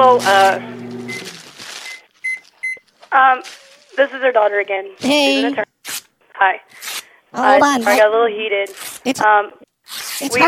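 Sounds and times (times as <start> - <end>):
speech: 0.0 - 0.7, 3.2 - 5.7, 6.4 - 10.4
microwave oven keypad beeping: 1.1 - 2.8.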